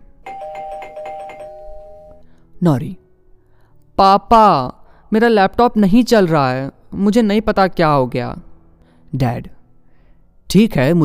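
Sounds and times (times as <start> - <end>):
doorbell at the door of a home chiming: 0.2 - 2.2
speech: 2.6 - 3.0, 4.0 - 8.5, 9.1 - 9.6, 10.5 - 11.0.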